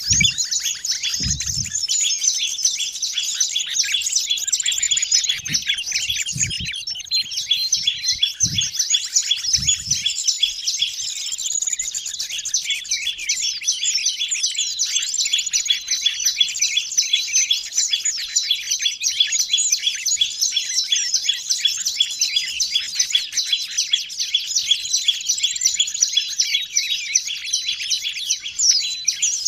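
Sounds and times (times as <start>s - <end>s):
bird song with busy high twittering and trills: 0.0s - 29.4s
low thumps: 1.2s - 1.7s.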